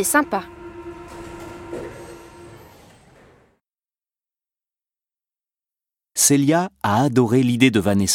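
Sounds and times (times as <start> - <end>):
speech: 0.0 - 0.6, 6.3 - 8.1
Paris metro train on line 2 rumbling: 0.0 - 3.6.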